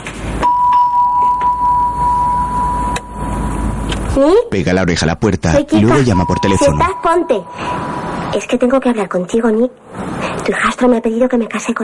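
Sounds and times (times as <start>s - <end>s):
doorbell buzzing at a studio door: 0.4s - 3.9s, 6.0s - 8.0s
speech: 4.2s - 11.8s.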